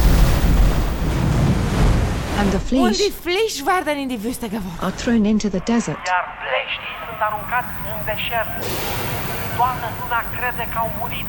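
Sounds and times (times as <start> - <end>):
loud roar of crashing ocean surf: 0.0 - 3.2, 6.8 - 11.2
speech: 2.5 - 11.2.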